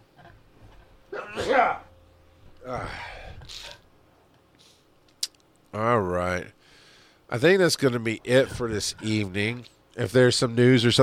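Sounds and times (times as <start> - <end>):
sneeze: 1.1 - 1.8
speech: 1.5 - 1.8, 2.6 - 3.7, 5.7 - 6.6, 7.3 - 11.0.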